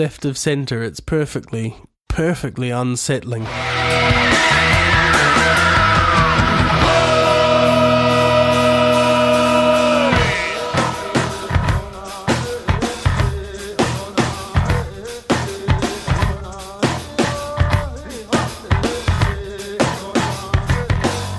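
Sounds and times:
speech: 0.0 - 5.7
loud dense rock instrumentation: 3.4 - 21.3
shrill sustained screeching vocal in rock song: 4.3 - 13.2.

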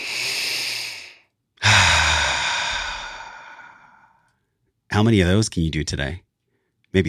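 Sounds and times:
deep breath in and out: 0.0 - 4.6
speech: 5.0 - 6.3.

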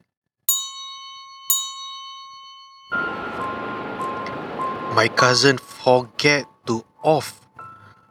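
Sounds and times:
doorbell ringing with bright clear chime tones: 0.5 - 6.4
steady wash of broadband noise: 3.0 - 6.2
speech: 5.0 - 7.4.

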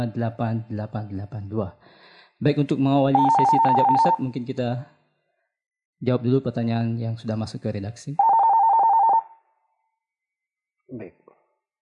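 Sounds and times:
speech: 0.0 - 5.0, 6.0 - 8.3, 10.9 - 11.2
telephone ringing with an incoming call: 3.2 - 4.3, 8.2 - 9.3.

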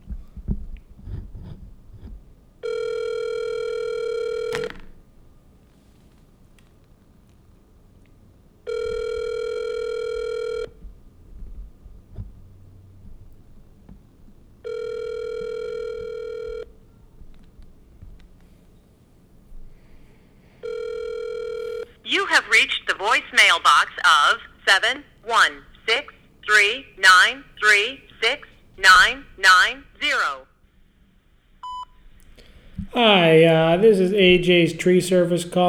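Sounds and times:
faint noise: 0.0 - 35.6
phone line ringback tone: 2.6 - 4.9, 8.7 - 10.7, 14.6 - 16.7, 20.6 - 24.3
speech: 22.6 - 30.5, 32.9 - 35.6.

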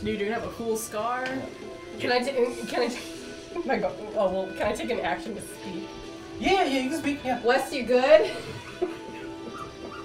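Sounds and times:
speech: 0.0 - 9.0
laughter: 8.2 - 10.0
dogs whimpering and yipping: 9.0 - 10.0.

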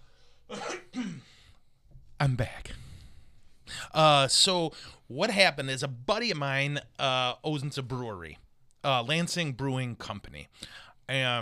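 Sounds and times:
person coughing: 0.5 - 1.4
speech: 2.2 - 2.8, 3.9 - 11.4.

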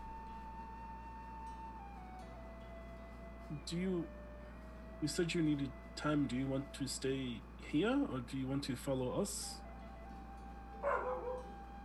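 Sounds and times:
faint steady hum: 0.0 - 11.8
speech: 3.5 - 4.2, 5.0 - 9.6
dog barking with a whining tail: 10.8 - 11.6.

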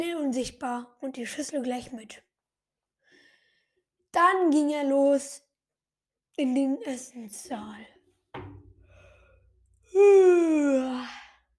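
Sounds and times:
speech: 0.0 - 2.3, 4.1 - 5.4, 6.4 - 8.0, 10.0 - 11.2
brief thump: 8.3 - 9.3
person yawning: 9.9 - 11.4.

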